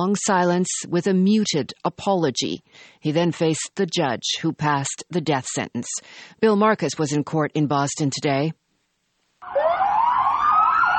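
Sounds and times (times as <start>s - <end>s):
speech: 0.0s - 8.6s
police sirens of a prisoner transport convoy leaving court in Boston: 9.4s - 10.9s.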